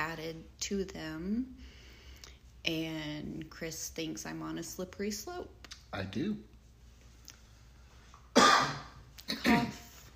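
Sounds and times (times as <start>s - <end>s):
speech: 0.2s - 1.7s, 2.6s - 6.5s
rough breathy coughs: 8.3s - 9.9s.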